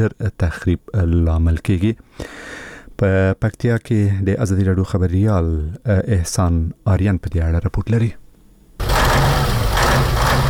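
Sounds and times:
speech: 0.0s - 8.2s
truck engine running while carrying cement over its legal load, heard from inside the cab: 8.8s - 10.4s.

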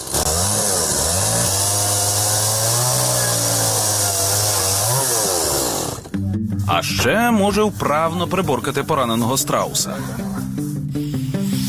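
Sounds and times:
chainsaw engine roaring under load: 0.0s - 6.2s
speech: 6.7s - 11.0s.

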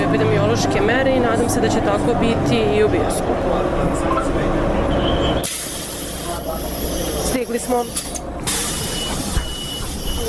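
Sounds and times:
city bus engine rumble inside: 0.0s - 10.2s
speech: 0.1s - 5.6s, 6.4s - 8.4s
loud hiss of air on a city bus: 5.4s - 10.2s.

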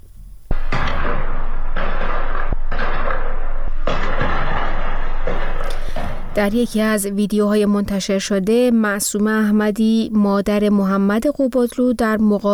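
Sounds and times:
booming explosion blasts: 0.0s - 7.7s
gunfire cracks: 0.5s - 6.7s
speech: 6.4s - 12.5s.

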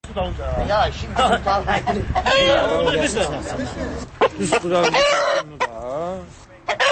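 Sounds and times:
crowd chattering and calling out at a cockfight: 0.1s - 6.8s
roosters crowing and clucking at a cockfight in Maştağı, Baku: 1.7s - 6.8s.

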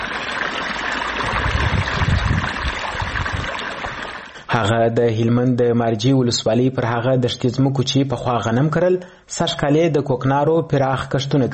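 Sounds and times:
irrigation water flowing into freshly planted poppy fields: 0.0s - 4.5s
speech: 4.5s - 11.5s.

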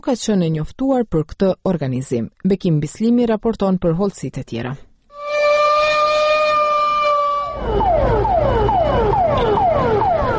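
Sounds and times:
speech: 0.0s - 4.9s
civil defense alarm siren signalling start of fire emergency drill: 5.1s - 10.3s.

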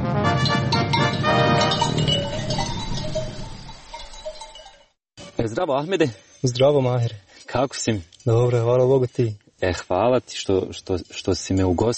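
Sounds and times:
sheep neck bells clinking and jangling on pasture by Hrastićevo: 0.4s - 11.9s
speech: 5.4s - 11.9s.

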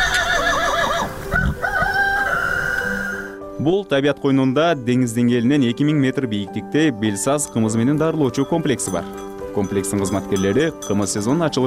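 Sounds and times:
horse from a grazing herd whinnying on a high mountain pasture: 0.0s - 3.4s
speech: 3.6s - 11.6s.

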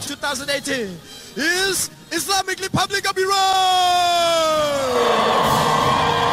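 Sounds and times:
speech: 0.3s - 6.3s
women futsal players cheering and celebrating after winning a title: 4.5s - 6.3s.

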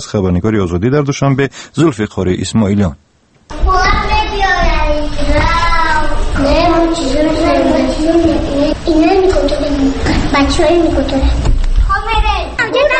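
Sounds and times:
speech: 0.0s - 3.1s, 6.4s - 11.5s
children playing in a kindergarten: 3.5s - 12.9s.

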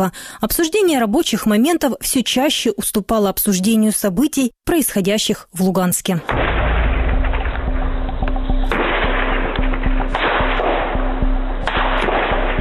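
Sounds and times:
speech: 0.0s - 6.5s
gunfire cracking in bursts: 6.3s - 12.6s.

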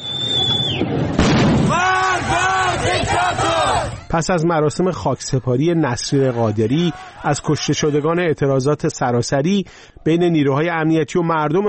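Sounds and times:
city street noise: 0.0s - 10.7s
gunshots in a city street: 1.0s - 2.2s
crowd shouting and wailing: 1.4s - 4.2s, 5.6s - 8.4s
speech: 4.1s - 11.6s
laughter: 5.0s - 8.6s.

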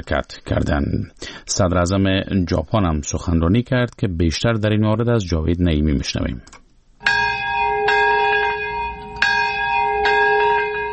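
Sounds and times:
speech: 0.0s - 6.6s
memorial bells ringing: 7.0s - 10.9s.

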